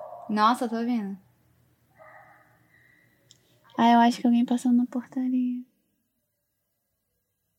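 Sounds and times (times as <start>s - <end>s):
dog barking by a building's front entrance: 0.0s - 0.4s, 2.0s - 3.2s
speech: 0.3s - 1.2s, 3.8s - 5.7s.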